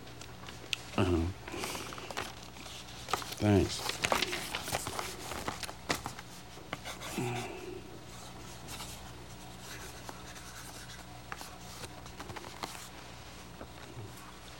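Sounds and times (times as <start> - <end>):
faint low hum: 0.0 - 14.5
speech: 1.0 - 1.4, 3.4 - 4.1
pencil scratching across paper: 8.4 - 11.8.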